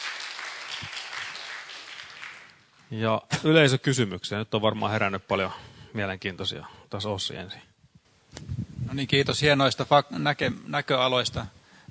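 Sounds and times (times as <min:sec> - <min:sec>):
audience clapping after a presentation: 0:00.0 - 0:02.8
speech: 0:02.9 - 0:07.7, 0:08.4 - 0:11.6.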